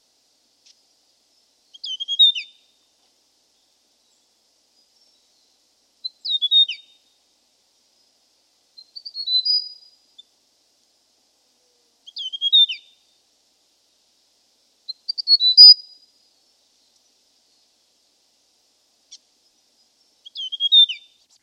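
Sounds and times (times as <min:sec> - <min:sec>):
hill prinia chirping and whistled trill: 0:01.7 - 0:02.5, 0:06.2 - 0:06.8, 0:08.8 - 0:09.8, 0:12.1 - 0:12.8, 0:14.9 - 0:15.9, 0:20.3 - 0:21.0.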